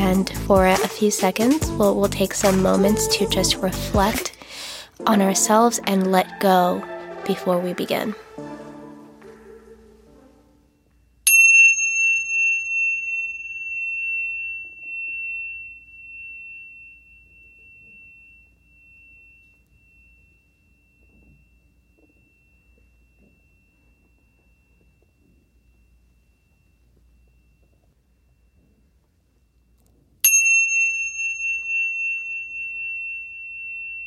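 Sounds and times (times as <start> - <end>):
speech: 0.1 - 4.3, 5.0 - 8.2
meditation chimes being rung: 11.2 - 34.0.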